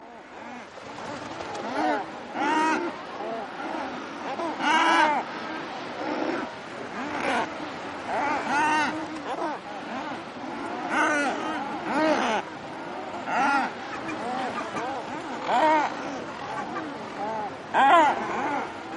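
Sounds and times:
thick-billed murres giving rough moaning growls in a busy chorus: 0.0s - 18.9s.

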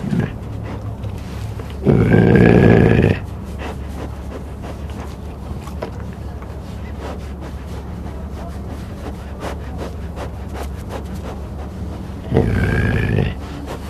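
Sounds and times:
cougar uttering short rough rising calls: 0.0s - 0.4s, 1.8s - 4.0s, 12.2s - 13.4s.

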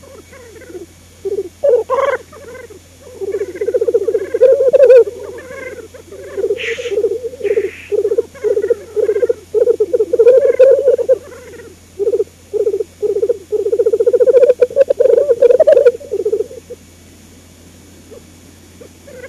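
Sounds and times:
black grouse giving low bubbling coos: 0.0s - 17.0s, 18.0s - 19.2s
black grouse breathy hisses: 6.6s - 8.0s.

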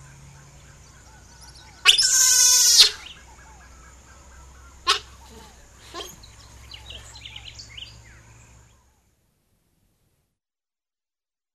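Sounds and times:
Giant otter screaming: 1.8s - 3.2s, 4.8s - 6.2s.

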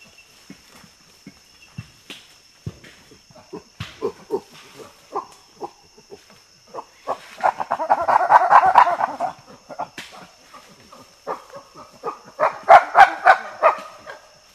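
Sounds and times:
common chimpanzee hooting: 3.3s - 14.2s.

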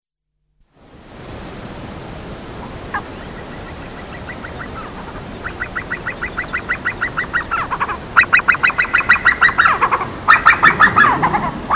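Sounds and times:
Himalayan snowcock clucking and cackling: 2.6s - 11.7s.

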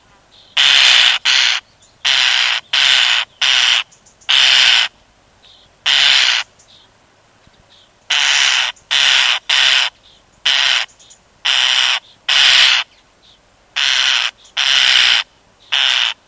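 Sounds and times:
European starling repeating grating hissy screams: 0.6s - 4.9s, 5.9s - 6.5s, 8.1s - 9.9s, 10.5s - 10.9s, 11.5s - 12.8s, 13.8s - 16.2s.

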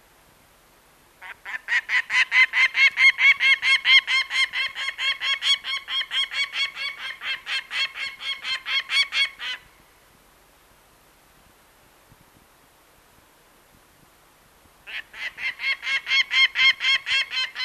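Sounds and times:
peregrine falcon cackling: 1.2s - 9.6s, 14.9s - 17.6s.

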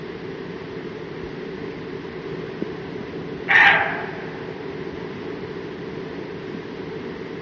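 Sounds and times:
low hum: 0.0s - 7.3s
roe deer giving a harsh hoarse bark: 3.4s - 4.7s.

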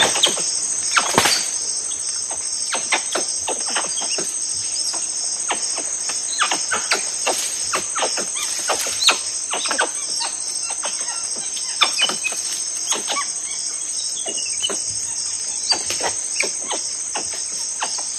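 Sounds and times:
tufted capuchin giving clicky chirps and squealing notes: 0.0s - 1.5s, 5.5s - 14.9s, 15.5s - 18.1s
insects buzzing: 0.0s - 18.1s.

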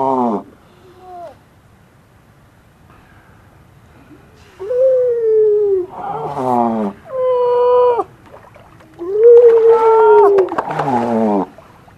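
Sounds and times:
grey seal moaning calls: 0.0s - 1.4s, 4.6s - 11.6s.

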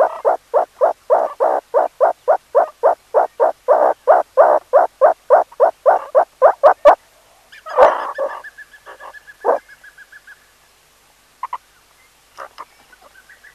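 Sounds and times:
meerkat calls: 0.0s - 7.0s, 7.7s - 9.6s.

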